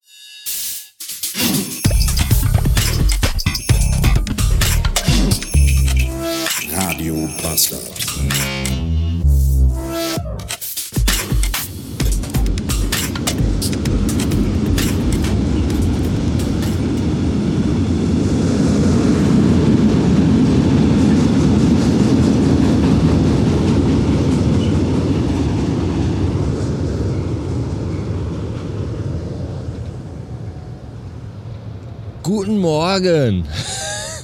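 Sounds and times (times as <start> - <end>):
metallic rattling and clanking of freight train on steel bridge: 1.4 - 8.9, 10.4 - 17.1
freight train crossing steel railway bridge: 1.8 - 9.8, 10.4 - 34.2
speech: 7.0 - 8.9, 32.6 - 33.8.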